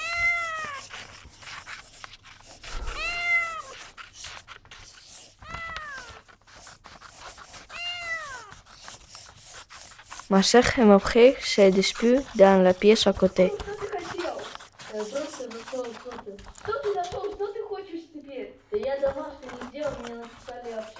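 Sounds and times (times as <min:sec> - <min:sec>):
cat meowing: 0:00.0 - 0:00.8, 0:02.6 - 0:04.0, 0:05.4 - 0:06.3, 0:07.6 - 0:08.7
speech: 0:10.3 - 0:13.7, 0:15.0 - 0:17.2.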